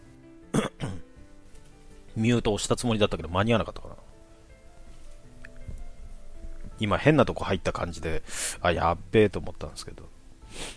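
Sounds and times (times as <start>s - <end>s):
person coughing: 0.5s - 1.0s
throat clearing: 0.5s - 1.0s
speech: 2.2s - 4.0s, 6.8s - 10.7s.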